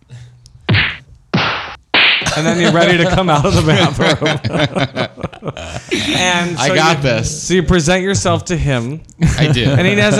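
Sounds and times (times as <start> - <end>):
punch landing on a face: 0.7 - 2.3
laughter: 2.2 - 6.7, 9.2 - 10.1
speech: 2.4 - 10.1.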